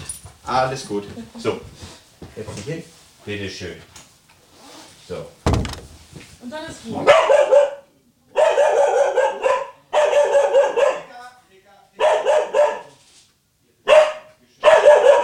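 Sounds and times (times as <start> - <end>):
speech: 0.5 - 4.0, 5.1 - 5.4, 6.4 - 7.7
dog barking: 7.0 - 11.3, 12.0 - 13.0, 13.8 - 15.2.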